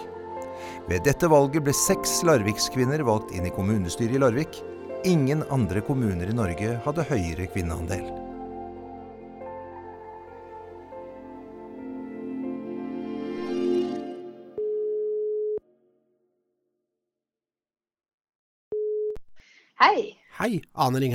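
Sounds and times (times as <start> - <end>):
music: 0.0 - 14.6
speech: 0.8 - 8.2, 19.9 - 21.1
telephone ringback tone before call is answered: 14.6 - 15.6.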